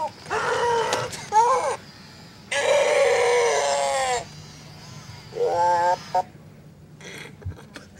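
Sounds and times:
Pleo robot dinosaur toy crying and screaming when hit: 0:00.0 - 0:01.8, 0:02.5 - 0:04.3, 0:05.3 - 0:06.3.

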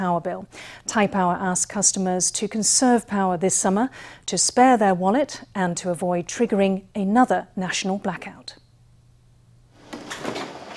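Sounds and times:
speech: 0:00.0 - 0:08.6
fridge door opening and shutting: 0:09.8 - 0:10.7.

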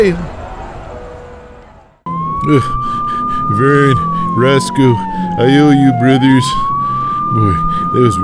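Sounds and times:
speech: 0:00.0 - 0:00.4, 0:02.4 - 0:06.7, 0:07.3 - 0:08.2
police car siren: 0:00.4 - 0:08.2
police car engine rumbling as car peels off: 0:02.1 - 0:08.2.

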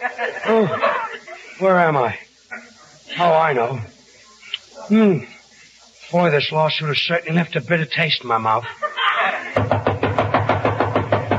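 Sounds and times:
laughter: 0:00.0 - 0:01.8, 0:08.4 - 0:09.6
speech: 0:01.6 - 0:02.2, 0:03.2 - 0:03.9, 0:04.9 - 0:05.3, 0:06.1 - 0:08.9
knocking on a door: 0:09.6 - 0:11.3.

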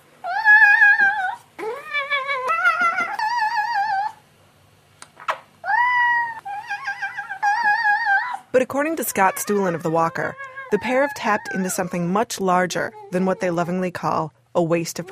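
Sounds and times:
cat yodeling in warbling cries: 0:00.2 - 0:04.2, 0:05.6 - 0:12.0
speech: 0:08.7 - 0:15.1.

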